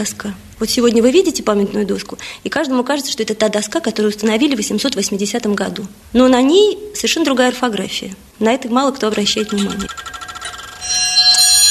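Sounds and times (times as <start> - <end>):
speech: 0.0 - 10.1
antique clock chiming with bright bell tones: 9.6 - 11.6.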